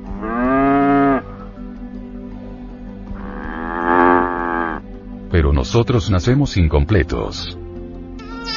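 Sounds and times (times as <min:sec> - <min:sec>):
cow mooing: 0:00.1 - 0:01.2, 0:03.2 - 0:04.8
speech: 0:05.4 - 0:07.6.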